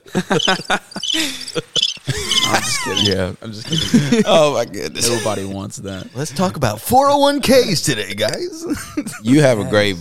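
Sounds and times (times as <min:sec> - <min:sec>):
laughter: 0:00.0 - 0:05.6, 0:08.6 - 0:09.4
crickets chirping in a pulsing trill: 0:00.1 - 0:04.2
speech: 0:00.1 - 0:09.9.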